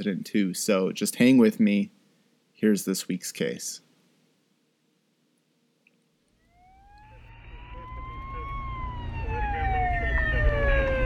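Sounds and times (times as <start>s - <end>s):
speech: 0.0s - 2.0s, 2.6s - 3.9s
ambulance siren wailing en route to a hospital: 6.4s - 11.0s.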